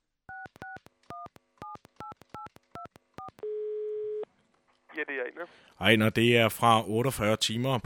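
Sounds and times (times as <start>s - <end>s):
steady loud telephone dial tone: 0.3s - 4.3s
speech: 5.0s - 7.8s.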